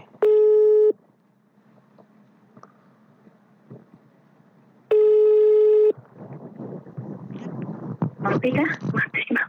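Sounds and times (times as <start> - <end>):
phone busy tone beeps after a dropped mobile call: 0.2 - 1.0, 4.9 - 6.0
rustling noise: 5.9 - 9.2
speech: 8.4 - 9.4.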